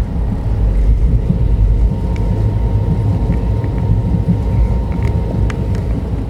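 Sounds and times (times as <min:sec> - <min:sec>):
faint clicks and rattles: 0:00.0 - 0:06.2
low-frequency rumble inside a moving train: 0:00.0 - 0:06.2.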